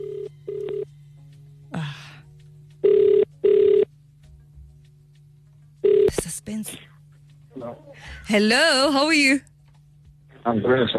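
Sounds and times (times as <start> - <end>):
phone line ringing back on an outgoing call: 0.0 - 0.9, 2.8 - 3.9, 5.8 - 6.2
low steady hum: 0.0 - 10.9
speech: 8.3 - 9.5, 10.4 - 10.9.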